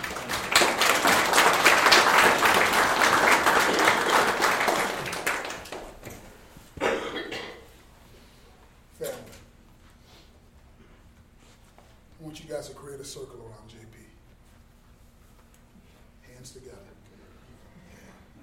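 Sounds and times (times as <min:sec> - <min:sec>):
audience applauding: 0:00.0 - 0:06.2.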